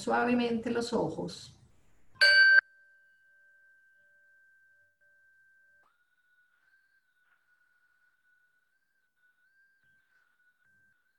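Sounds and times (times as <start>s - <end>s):
speech: 0.0s - 1.6s
meditation bell ringing: 2.2s - 11.1s.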